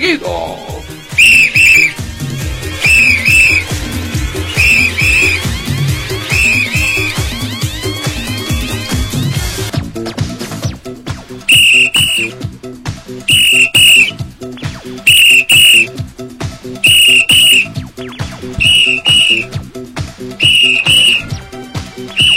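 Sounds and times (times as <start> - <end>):
speech: 0.0 - 0.5
steady rhythmic music bed: 0.6 - 22.3
shrill whistle blown in short bursts: 1.1 - 7.6, 11.5 - 12.4, 13.3 - 16.0, 16.8 - 17.8, 18.5 - 19.6, 20.4 - 21.4, 22.1 - 22.3.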